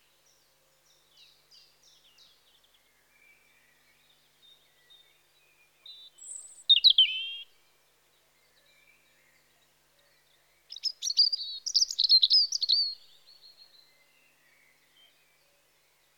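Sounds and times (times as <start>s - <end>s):
European robin Erithacus rubecula singing in spring: 5.8s - 7.5s, 10.7s - 14.0s.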